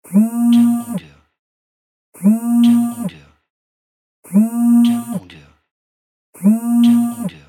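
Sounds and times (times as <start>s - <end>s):
phone vibrating: 0.1s - 1.1s, 2.2s - 3.1s, 4.3s - 5.3s, 6.4s - 7.4s.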